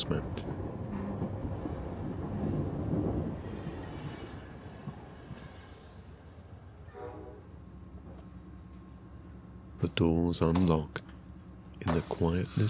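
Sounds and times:
speech: 0.0 - 0.4, 9.9 - 11.1, 11.8 - 12.6
train rumbling as it comes to a halt: 0.0 - 10.1.

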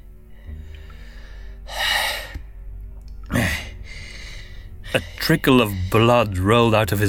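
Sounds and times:
heavy forceful breaths: 0.2 - 6.2
speech: 5.0 - 7.0.

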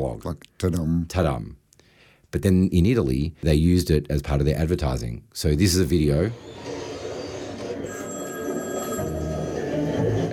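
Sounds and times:
speech: 0.0 - 1.6, 2.3 - 6.8
telephone ringing in a train station: 6.7 - 10.3.

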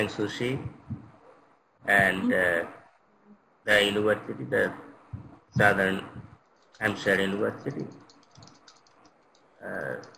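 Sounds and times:
speech: 0.0 - 0.8, 1.8 - 2.8, 3.6 - 4.9, 5.6 - 8.0, 9.6 - 10.1
typing on a computer keyboard: 6.4 - 10.1.

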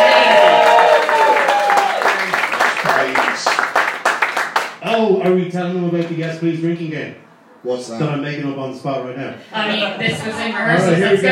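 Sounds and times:
live crowd clapping: 0.0 - 5.4
speech: 5.3 - 11.2.

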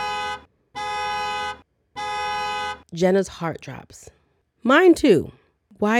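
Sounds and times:
car horn honking outside: 0.0 - 2.9
speech: 2.9 - 5.9.

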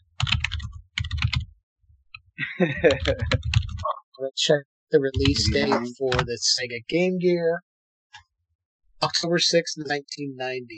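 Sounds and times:
typing on a computer keyboard: 0.2 - 1.5, 2.9 - 3.8
laughter: 2.4 - 3.4, 4.4 - 7.6
speech: 2.6 - 3.5, 4.2 - 7.7, 9.0 - 10.7.

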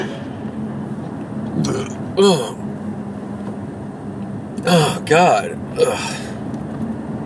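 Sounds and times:
steady low rumble: 0.0 - 4.5
person hiccuping: 1.6 - 2.6, 4.6 - 5.0, 5.8 - 6.2.

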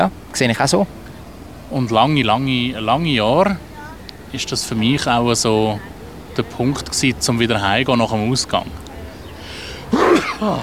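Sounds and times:
speech: 0.0 - 1.0, 1.7 - 3.7, 4.3 - 8.8, 10.4 - 10.6
person sneezing: 9.9 - 10.6.

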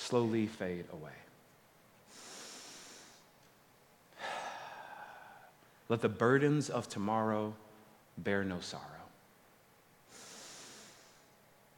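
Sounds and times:
speech: 0.1 - 1.3, 5.9 - 9.0
deep breathing: 2.1 - 3.3, 4.1 - 5.7, 10.1 - 11.4.

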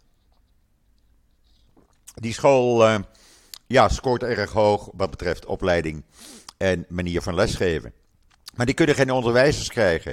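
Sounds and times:
person sipping water: 0.1 - 2.2
gulp of water: 1.6 - 2.2
speech: 2.1 - 10.1.

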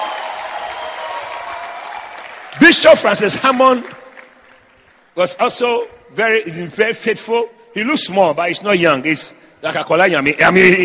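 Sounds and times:
audience clapping at a church service: 0.0 - 5.2
speech: 2.6 - 4.0, 5.2 - 10.8.

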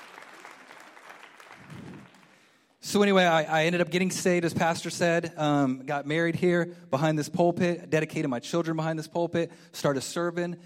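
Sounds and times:
congregation clapping in a church: 0.0 - 2.8
speech: 2.9 - 10.6.

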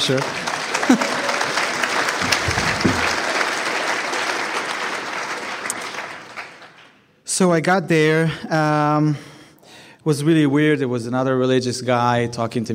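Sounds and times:
speech: 0.0 - 1.2, 7.4 - 9.3, 10.0 - 12.7
audience applause filling the room: 0.0 - 7.1
laughter: 0.7 - 3.5.

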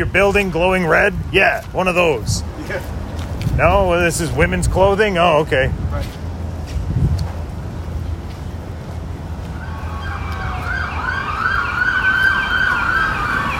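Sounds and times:
speech: 0.0 - 3.0, 3.6 - 6.2
traffic noise: 0.0 - 13.5
emergency vehicle siren on a New Orleans street: 9.5 - 13.5.

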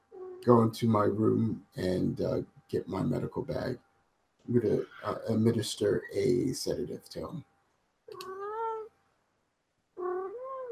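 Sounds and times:
speech: 0.4 - 3.9, 4.5 - 7.5
cat meowing: 8.1 - 8.9, 10.0 - 10.7.

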